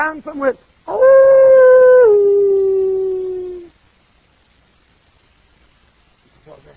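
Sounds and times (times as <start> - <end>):
human voice imitating a coyote howling: 0.9 - 3.7.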